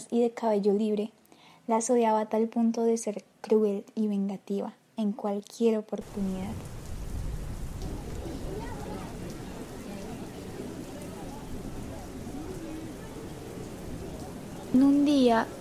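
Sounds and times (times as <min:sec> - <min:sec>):
speech: 0:00.1 - 0:06.8, 0:14.8 - 0:15.5
deep low rumble of thunder: 0:06.0 - 0:15.5
steady rain of a small storm: 0:06.0 - 0:15.5
faint voices murmuring: 0:07.8 - 0:14.8.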